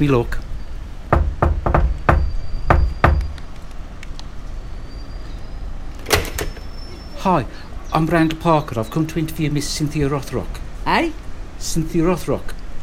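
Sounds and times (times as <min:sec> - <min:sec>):
speech: 0:00.0 - 0:00.4, 0:07.2 - 0:12.6
knocking on a flat door: 0:01.1 - 0:03.3.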